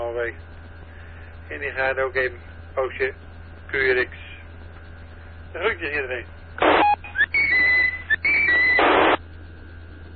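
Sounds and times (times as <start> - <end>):
speech: 0.2 - 0.6, 1.5 - 4.3, 5.5 - 6.8
radio static hiss: 6.6 - 9.2
whistled melody over a radio link: 6.8 - 9.2.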